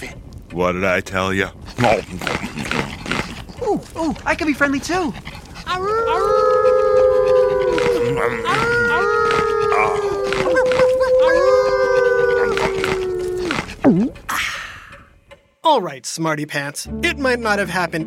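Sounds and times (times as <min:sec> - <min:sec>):
speech: 0:00.0 - 0:03.0, 0:03.7 - 0:06.5, 0:08.0 - 0:09.2, 0:15.7 - 0:18.0
wolf whimpering: 0:01.6 - 0:14.3
wolves howling: 0:01.7 - 0:14.2.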